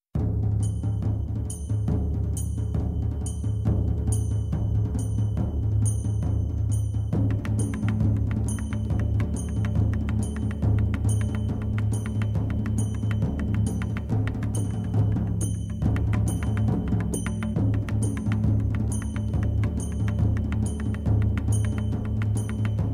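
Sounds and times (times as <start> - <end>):
Sinhalese drumming: 0.2 - 22.9.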